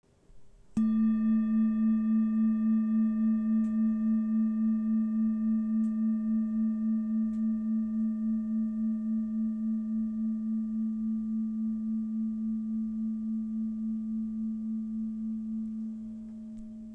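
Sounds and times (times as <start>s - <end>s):
singing bowl: 0.7s - 16.9s.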